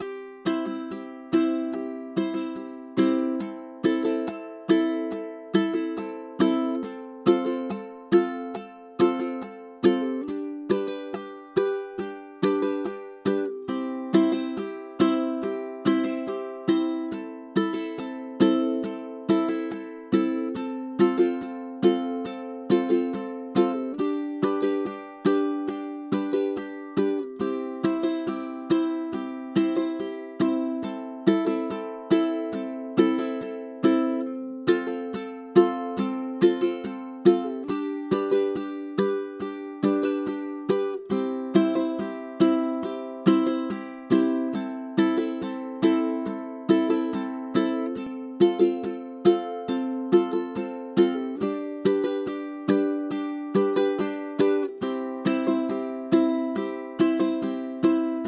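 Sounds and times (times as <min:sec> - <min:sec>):
ukulele strumming: 0:00.0 - 0:58.2.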